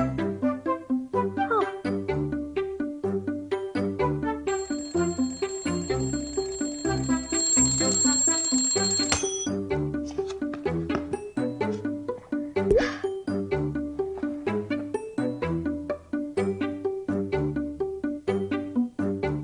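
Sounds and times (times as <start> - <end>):
bouncy music: 0.0 - 6.8, 9.0 - 19.4
alarm clock ringing as a stretch reminder: 4.5 - 9.6.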